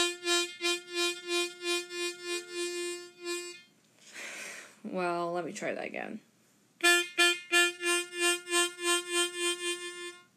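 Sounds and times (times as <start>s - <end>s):
harmonica two-hole draw played staccato with guttural stops: 0.0s - 3.7s, 6.8s - 10.3s
speech: 4.9s - 6.3s.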